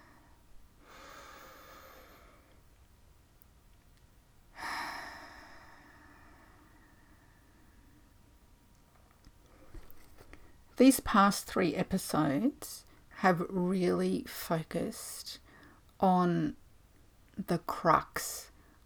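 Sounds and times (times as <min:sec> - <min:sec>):
deep breath: 0:00.0 - 0:02.6, 0:04.5 - 0:08.2, 0:15.4 - 0:15.9
speech: 0:10.8 - 0:15.4, 0:16.0 - 0:16.6, 0:17.4 - 0:18.5.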